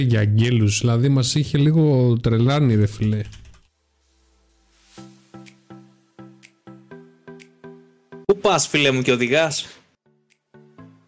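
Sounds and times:
speech: 0:00.0 - 0:03.4, 0:08.5 - 0:09.8
typing a search on a computer keyboard: 0:03.0 - 0:03.7.

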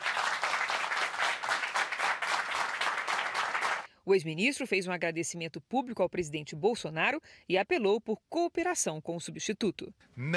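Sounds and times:
large auditorium audience applauding in a full hall: 0:00.0 - 0:03.9
speech: 0:04.0 - 0:10.3.

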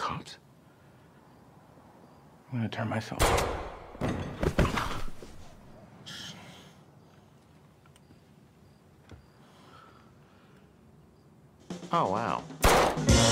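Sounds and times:
speech: 0:00.2 - 0:00.4, 0:02.5 - 0:03.6, 0:11.9 - 0:13.1
gunshot in a TV series scene: 0:03.2 - 0:04.0, 0:12.6 - 0:13.2.

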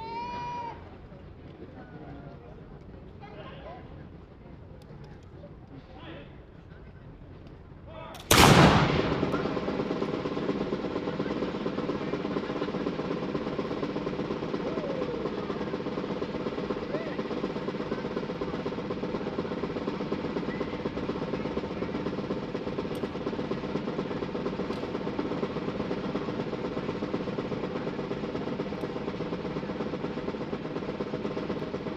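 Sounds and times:
quiet murmur: 0:00.0 - 0:08.3, 0:09.0 - 0:31.9
crowd noise: 0:00.0 - 0:31.9
loud gunshot at a shooting demonstration: 0:08.2 - 0:09.8.

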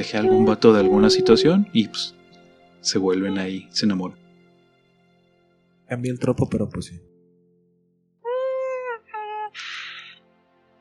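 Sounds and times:
person humming a movie theme tune: 0:00.0 - 0:01.7
speech: 0:00.0 - 0:02.2, 0:02.8 - 0:04.2, 0:05.9 - 0:07.1.

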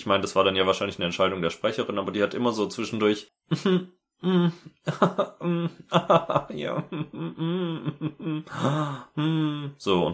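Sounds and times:
speech: 0:00.0 - 0:10.1
laughter: 0:03.5 - 0:08.9
person imitating moaning and gasping: 0:04.2 - 0:04.8, 0:06.9 - 0:09.8.

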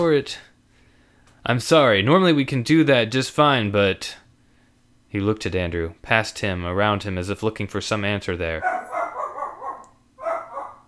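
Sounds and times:
speech: 0:00.0 - 0:00.5, 0:01.4 - 0:04.2, 0:05.1 - 0:08.9
dog barking: 0:08.6 - 0:10.8.

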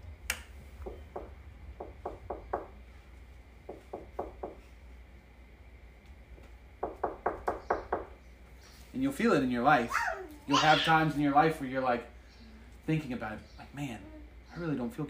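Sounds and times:
low steady hum: 0:00.0 - 0:15.0
firm knocking on wood: 0:00.8 - 0:02.8, 0:03.6 - 0:04.6, 0:06.8 - 0:08.2
speech: 0:09.0 - 0:12.1, 0:12.9 - 0:15.0.

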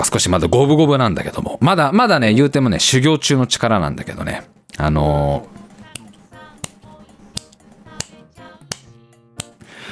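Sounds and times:
speech: 0:00.0 - 0:05.6
finger snapping: 0:07.4 - 0:09.6.

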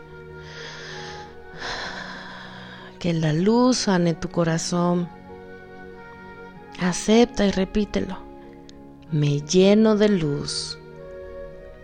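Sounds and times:
slow exhale: 0:00.4 - 0:03.0
slow soft inhale: 0:00.4 - 0:03.0
speech: 0:03.0 - 0:05.2, 0:06.8 - 0:08.2, 0:09.1 - 0:10.8.

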